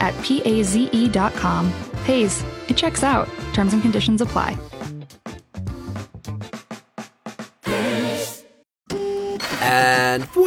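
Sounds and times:
speech: 0.0s - 4.8s
steady humming drone of a running printer: 8.9s - 10.2s
repaired printer starting up: 8.9s - 10.4s
rhythmic mechanical clunks and whirs of a printer: 8.9s - 10.4s.

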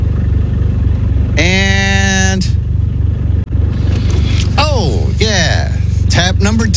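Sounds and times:
car engine idling and revving: 0.0s - 6.7s.

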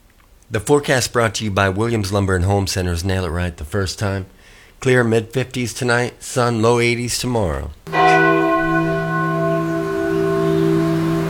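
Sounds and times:
speech: 0.5s - 7.9s
single bell ringing at an old church on Highway 28: 7.9s - 11.2s.

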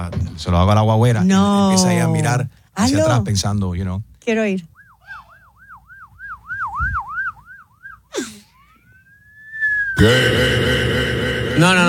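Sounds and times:
speech: 0.0s - 4.7s, 10.0s - 10.5s, 11.6s - 11.8s
person whistling a wavering police siren imitation: 4.7s - 10.0s
long rising whistle: 4.8s - 8.0s, 8.6s - 10.2s
burst of loud noisy sound: 10.0s - 11.8s.

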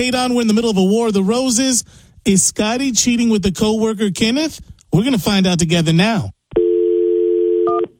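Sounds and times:
speech: 0.0s - 6.4s
steady telephone dial tone: 6.6s - 7.9s.

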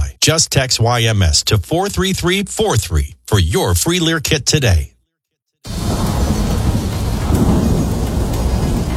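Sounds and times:
speech: 0.2s - 4.9s
deep thunder rumbling: 5.7s - 8.9s
heavy rain downpour: 5.7s - 8.9s.

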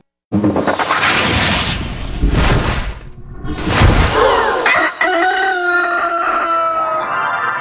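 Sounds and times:
harsh noisy splattering bursts: 0.6s - 4.9s
rooster crowing: 4.0s - 7.4s.

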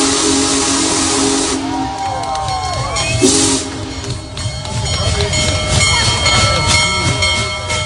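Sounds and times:
Big Boy 4014 steam locomotive whistle blasts in Rocky River: 0.0s - 2.4s, 3.1s - 4.1s
steam train rolling past with heavy rumble in Rocky River: 0.0s - 7.8s
faint crowd murmur in Rocky River: 1.5s - 7.8s.

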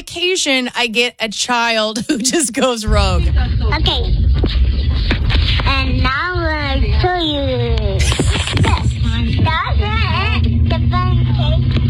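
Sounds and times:
speech: 0.2s - 4.6s
engine and road rumble inside a moving car: 3.0s - 11.8s.

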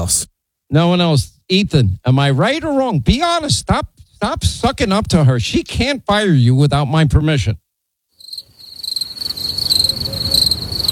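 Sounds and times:
speech: 0.0s - 7.6s
crickets chirping: 8.2s - 10.8s.

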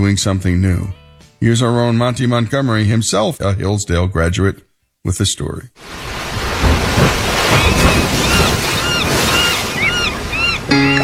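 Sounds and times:
chirping bird calls: 0.0s - 5.0s, 7.3s - 11.0s
speech: 0.0s - 6.2s
ocean waves washing in: 5.8s - 11.0s.

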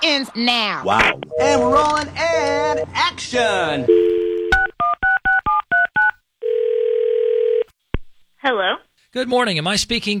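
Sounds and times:
speech: 0.1s - 4.1s, 8.4s - 10.1s
phone line tone: 1.3s - 2.9s, 3.9s - 5.0s, 6.0s - 7.7s.

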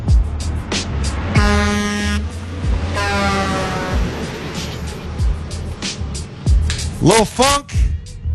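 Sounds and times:
rumbling traffic-like noise: 0.0s - 8.3s
loud blaring air horn blasts: 1.3s - 4.8s
speech: 7.0s - 7.6s.

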